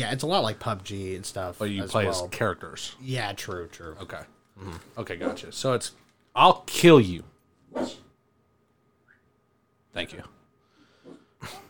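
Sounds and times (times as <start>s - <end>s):
speech: 0.0s - 8.0s, 10.0s - 10.4s, 11.4s - 11.6s
dog barking: 7.7s - 8.0s.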